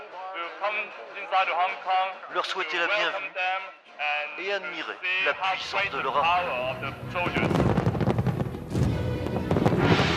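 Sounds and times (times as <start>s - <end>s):
speech: 0.6s - 7.7s
fireworks booming: 6.7s - 10.1s
fireworks crackling pops: 7.2s - 10.1s.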